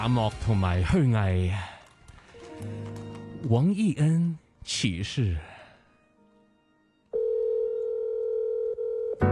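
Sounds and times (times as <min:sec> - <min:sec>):
speech: 0:00.0 - 0:01.8, 0:02.6 - 0:05.5
steady telephone dial tone: 0:07.1 - 0:09.2.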